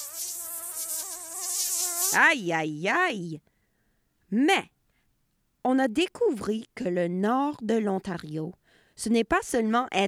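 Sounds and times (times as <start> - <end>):
flies buzzing: 0.0 - 2.4
speech: 2.1 - 3.5, 4.3 - 4.8, 5.6 - 10.0.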